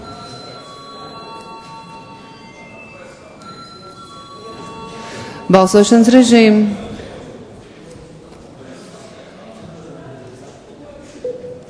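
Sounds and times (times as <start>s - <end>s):
parliament chamber electric bell ringing for a vote: 0.0s - 6.4s
faint murmur of voices: 0.0s - 11.6s
speech: 5.5s - 6.8s.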